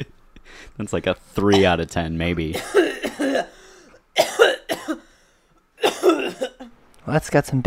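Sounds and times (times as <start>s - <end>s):
speech: 0.8s - 3.4s, 7.1s - 7.6s
dry hacking coughs: 2.5s - 6.7s.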